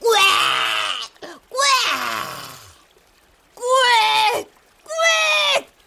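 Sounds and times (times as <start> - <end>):
person yelling wordless shouts: 0.0 - 2.4, 3.6 - 5.7.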